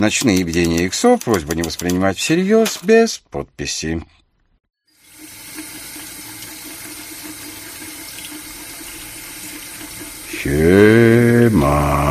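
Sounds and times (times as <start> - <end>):
speech: 0.0 - 4.2, 10.4 - 12.0
water sloshing and splashing in a bath as a person bathes: 4.9 - 11.8.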